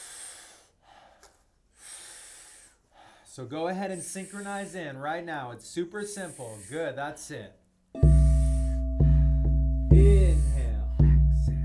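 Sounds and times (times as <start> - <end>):
soft exhale: 0.0 - 3.3, 3.9 - 4.9, 6.1 - 7.0, 8.2 - 9.0
forceful breaths through the mouth during a rhythmic breathing exercise: 0.0 - 5.0, 6.0 - 7.0, 8.0 - 10.8
speech: 3.4 - 7.6.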